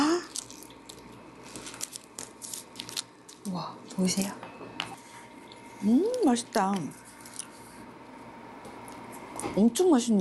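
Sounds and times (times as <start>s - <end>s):
biting into a freshly baked warm green mugwort bread muffin: 0.2s - 3.4s
speech: 3.4s - 4.5s, 5.8s - 7.0s, 9.6s - 10.1s.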